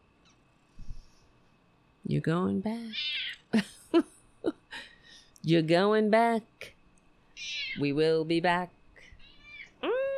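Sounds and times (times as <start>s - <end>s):
speech: 2.1s - 4.1s, 5.5s - 6.7s, 7.8s - 8.8s
male domestic cat meowing while attacking a person: 3.0s - 3.4s, 7.4s - 7.8s, 9.2s - 9.8s.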